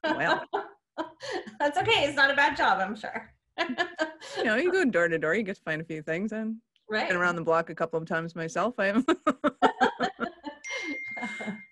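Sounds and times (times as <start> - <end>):
speech: 0.0 - 0.6, 1.6 - 9.6
voices and chuckling: 0.0 - 1.7, 9.0 - 11.6
bell ringing: 10.6 - 11.7.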